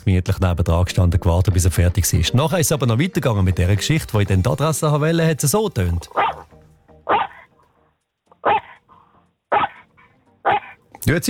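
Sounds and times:
speech: 0.1 - 6.4, 11.0 - 11.2
dog barking sharply: 6.2 - 6.5, 7.1 - 7.5, 8.3 - 10.9.

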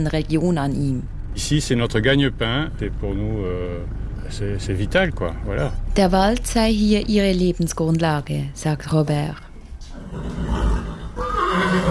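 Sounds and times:
speech: 0.0 - 9.4
breeding horses neighing in a stable: 9.9 - 11.9.

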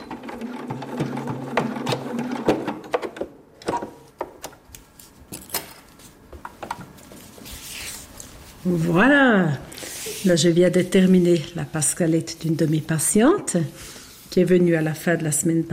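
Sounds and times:
sewing machine stitching hair into a hairpiece in a hair salon: 0.0 - 2.9
speech: 8.7 - 9.6, 10.2 - 15.7.

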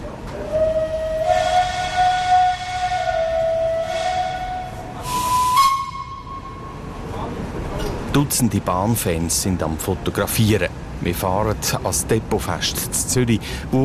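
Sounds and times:
constant low rumble of historic train departing: 0.0 - 13.8
historic steam train whistle departing Zurich main station: 0.4 - 7.0
bursts of hissing steam from steam locomotive: 1.1 - 5.8
speech: 8.2 - 13.8.

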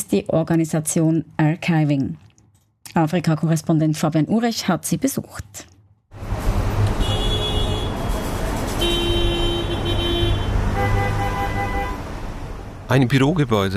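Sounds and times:
speech: 0.1 - 2.3, 2.9 - 5.7, 12.9 - 13.7
dense city street traffic rumbling: 6.0 - 13.7
car horns honking: 6.7 - 12.4.

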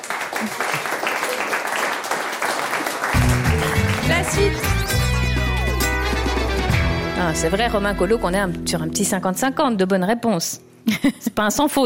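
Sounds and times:
applause from a small group: 0.0 - 6.7
speech: 0.4 - 0.9, 4.1 - 4.9, 7.2 - 11.8.

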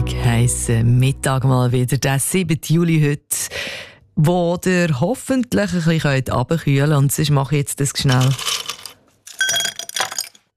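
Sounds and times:
speech: 0.4 - 8.6
ice cubes dropped into a glass: 8.1 - 10.5.

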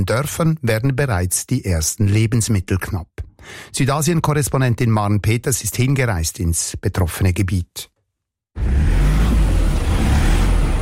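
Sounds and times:
speech: 0.0 - 7.9
vehicle engine revving hard on a muddy road: 8.6 - 10.8.

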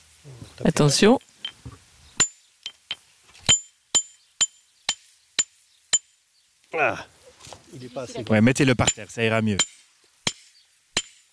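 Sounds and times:
speech: 0.2 - 1.3, 6.8 - 7.1, 7.7 - 9.8
geologist's hammer striking a hard river-worn pebble: 1.4 - 6.1, 8.8 - 11.3.

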